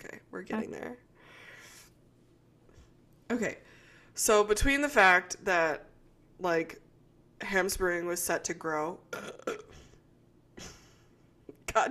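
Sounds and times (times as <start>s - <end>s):
speech: 0.4s - 1.1s, 3.3s - 6.8s, 7.4s - 9.6s
burp: 9.1s - 10.0s.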